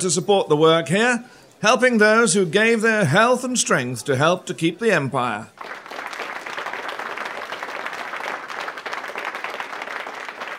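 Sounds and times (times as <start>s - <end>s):
speech: 0.0s - 5.8s
large crowd cheering and applauding: 5.6s - 10.5s.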